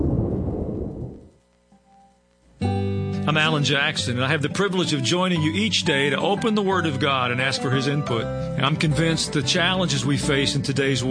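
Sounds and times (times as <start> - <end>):
loud deep thunder rumbling: 0.0 - 1.4
speech: 3.3 - 11.0.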